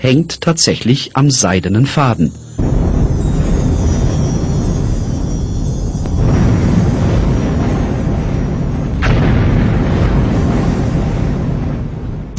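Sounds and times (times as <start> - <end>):
speech: 0.0 - 3.0
deep rumbling booms of a volcanic eruption: 2.3 - 12.3
thunderous roar of a volcanic eruption: 2.6 - 12.3.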